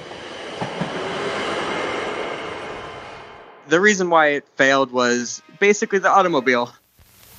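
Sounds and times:
train rumbling along tracks of a mountain route: 0.0s - 5.2s
speech: 3.7s - 6.8s.

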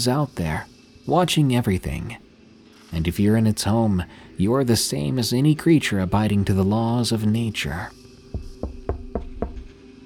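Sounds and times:
speech: 0.0s - 2.2s, 2.9s - 8.4s
faint steady hum: 0.0s - 10.0s
heavy booming knocks: 8.3s - 9.8s.

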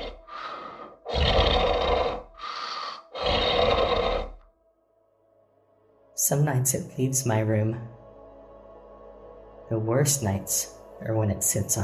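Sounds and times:
heavy raspy monster-like breathing: 0.0s - 4.4s
speech: 6.3s - 8.0s, 9.7s - 11.8s.

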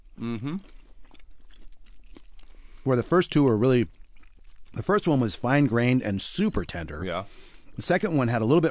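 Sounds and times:
soft chewing of a bite of New York steak: 0.0s - 7.8s
short hummed mm from a voice: 0.2s - 0.6s
speech: 0.2s - 0.8s, 2.8s - 4.0s, 4.7s - 8.6s.

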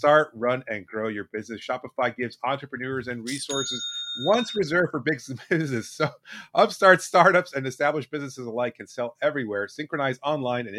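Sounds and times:
speech: 0.0s - 10.7s
online store sale notification chime: 3.3s - 4.9s.

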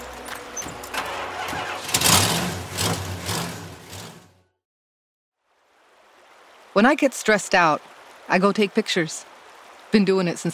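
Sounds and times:
pickup truck engine starting up: 0.0s - 4.4s
speech: 6.8s - 9.3s, 9.9s - 10.5s.

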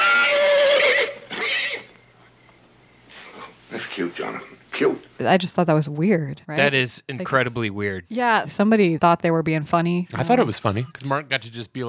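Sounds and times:
horse whinnying: 0.0s - 2.0s
speech: 3.9s - 11.8s.

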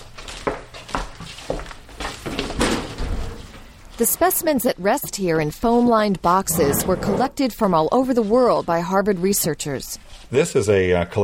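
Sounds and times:
wooden clunks and rattles of an insect specimen cabinet drawer: 2.1s - 3.7s
speech: 4.0s - 11.2s
insect specimen cabinet drawer scraping as it slides open: 6.4s - 7.5s.

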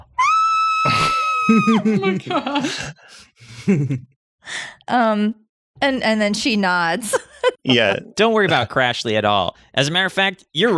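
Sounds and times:
voice imitating a woman screaming into her bitten wrist: 0.0s - 1.9s
laughter: 0.9s - 4.1s
speech: 1.5s - 10.7s.

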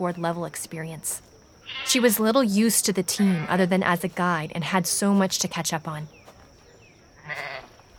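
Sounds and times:
speech: 0.0s - 6.2s
sheep bleating: 7.2s - 7.7s.

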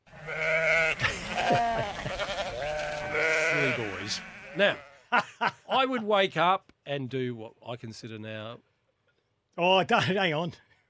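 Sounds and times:
goats bleating: 0.0s - 5.1s
laughter: 0.9s - 2.6s, 5.1s - 5.8s
speech: 4.1s - 8.7s, 9.6s - 10.7s.

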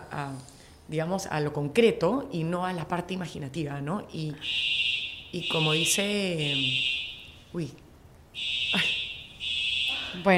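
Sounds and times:
speech: 0.2s - 7.8s, 10.2s - 10.3s
fire alarm blaring in a coworking office building: 4.3s - 7.7s, 8.4s - 10.3s.

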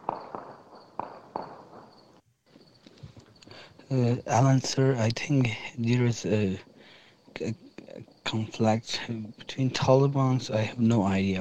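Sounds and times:
faint gunfire in Afghanistan recorded on a phone: 0.0s - 2.2s
low background noise: 0.0s - 11.3s
speech: 3.9s - 6.7s, 7.4s - 7.6s, 8.3s - 11.3s.

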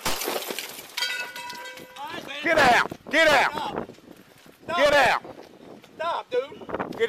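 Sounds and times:
bright ringing and tinkling shards: 0.0s - 2.2s
crash of breaking glass of a police cruiser rear window: 0.0s - 2.3s
speech: 2.4s - 3.8s, 4.8s - 5.2s.

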